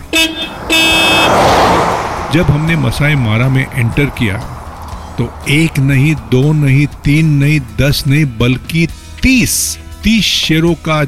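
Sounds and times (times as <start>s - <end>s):
car horn honking: 0.0s - 5.4s
kombi van engine and road noise pulling away: 0.0s - 11.0s
speech: 0.2s - 1.4s, 2.3s - 4.6s, 5.2s - 11.0s.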